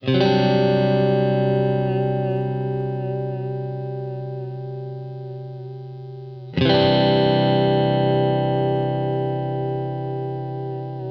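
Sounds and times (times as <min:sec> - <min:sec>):
country guitar breakdown: 0:00.0 - 0:11.0.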